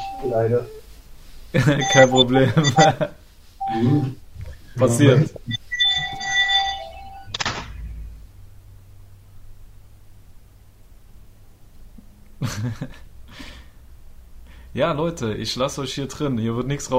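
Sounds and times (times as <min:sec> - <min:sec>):
bright electronic ringtone: 0:00.0 - 0:00.3, 0:01.8 - 0:03.0, 0:03.6 - 0:04.2, 0:05.5 - 0:07.3
humming room: 0:00.0 - 0:16.9
speech: 0:00.2 - 0:00.8, 0:01.5 - 0:04.2, 0:04.8 - 0:05.6, 0:12.4 - 0:13.5, 0:14.8 - 0:16.9.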